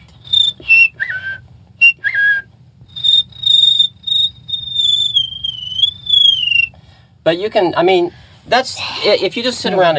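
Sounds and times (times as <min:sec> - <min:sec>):
person whistling a cricket imitation: 0:00.0 - 0:06.8
faint low hum: 0:00.0 - 0:09.9
speech: 0:07.2 - 0:09.9.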